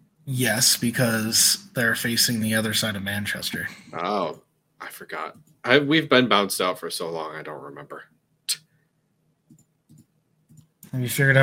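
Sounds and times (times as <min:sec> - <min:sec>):
faint low hum: 0:00.0 - 0:11.4
speech: 0:00.3 - 0:08.6, 0:10.9 - 0:11.4
computer mouse clicking: 0:09.4 - 0:11.0.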